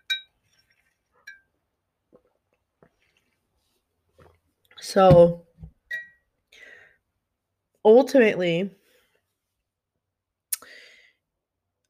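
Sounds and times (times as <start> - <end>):
glass clinking: 0.0 - 1.6, 5.9 - 6.2
person drinking water: 2.0 - 3.6
speech: 4.8 - 5.4, 7.8 - 8.8.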